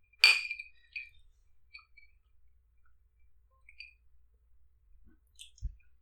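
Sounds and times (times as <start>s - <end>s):
glasses of whisky clinking in a toast: 0.2s - 1.2s.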